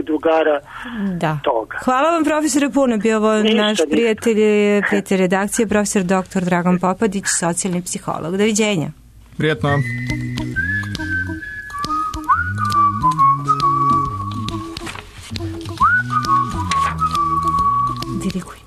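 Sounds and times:
speech: 0.0 - 10.2
low layered vocal-like backing in stepped chords: 9.4 - 18.6
whistling a melody: 9.6 - 15.0, 15.6 - 18.4.

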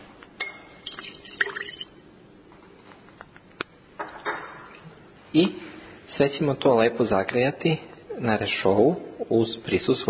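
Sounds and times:
small amount of water poured into a glass container: 0.8 - 2.0
speech: 5.4 - 5.6, 6.2 - 10.0.

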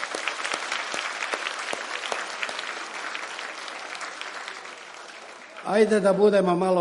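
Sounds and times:
audience applause: 0.0 - 6.4
speech: 5.7 - 6.8.

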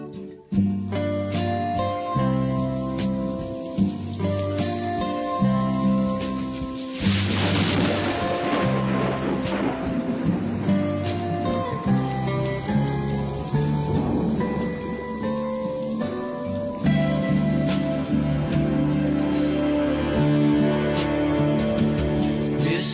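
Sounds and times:
gentle instrumental music: 0.0 - 22.9
steady rain pouring down: 0.2 - 22.9
low thunder rumble: 2.3 - 18.8.

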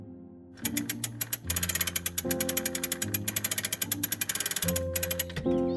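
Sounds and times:
ratchet clicks of a clock being wound with a key: 0.6 - 5.6.

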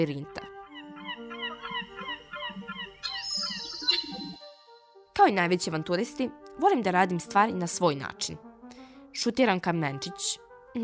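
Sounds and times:
speech: 0.0 - 0.4, 5.2 - 8.4, 9.2 - 10.8
seagulls crying over a city: 0.7 - 4.5.

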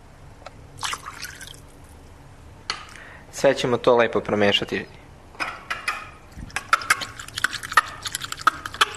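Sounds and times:
water poured into ethanol in a container: 0.8 - 1.7, 6.3 - 8.9
speech: 3.4 - 5.0.

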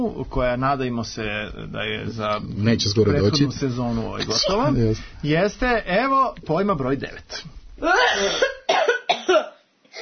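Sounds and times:
speech: 0.0 - 8.6
person coughing: 7.8 - 10.0.

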